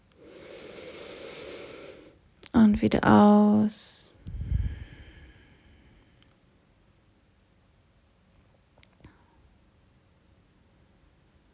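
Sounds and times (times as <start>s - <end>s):
deep breath in through the nose: 0.2s - 2.2s, 4.2s - 6.2s
speech: 2.6s - 4.0s.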